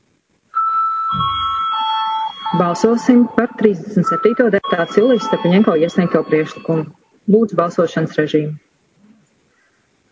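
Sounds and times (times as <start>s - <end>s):
electric bell ringing to call a parliamentary vote: 0.6s - 6.9s
speech: 2.6s - 8.6s.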